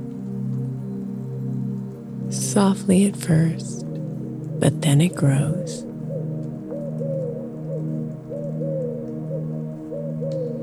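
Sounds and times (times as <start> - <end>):
faint hiss of ambience: 0.0 - 10.6
speech: 2.3 - 3.8, 4.6 - 5.9
owl hooting: 2.3 - 10.6.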